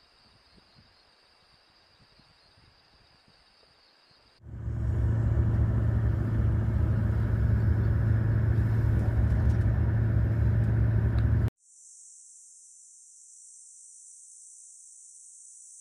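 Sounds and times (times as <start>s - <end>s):
vehicle engine rumbling while driving off road: 4.4s - 11.5s.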